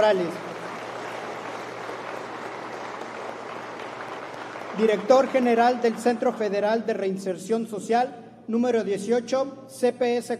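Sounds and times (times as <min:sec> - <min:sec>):
speech: 0:00.0 - 0:00.5, 0:04.8 - 0:10.3
audience applause welcoming an official at a ceremony: 0:00.0 - 0:06.6.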